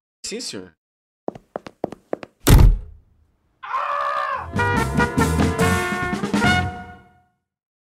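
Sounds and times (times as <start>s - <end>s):
speech: 0.3s - 1.4s
light footsteps: 1.3s - 2.4s
door slamming shut: 2.4s - 3.0s
music: 4.4s - 7.5s.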